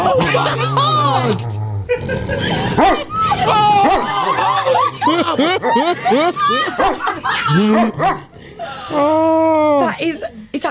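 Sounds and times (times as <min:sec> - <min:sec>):
speech: 0:00.4 - 0:03.1, 0:05.4 - 0:08.3, 0:08.9 - 0:10.6
laughter: 0:01.9 - 0:09.2
dog barking and yipping: 0:02.8 - 0:04.5, 0:06.5 - 0:08.3.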